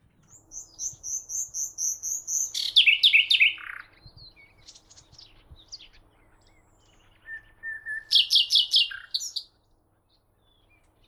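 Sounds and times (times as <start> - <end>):
common nightingale Luscinia megarhynchos song: 0.0 - 11.0.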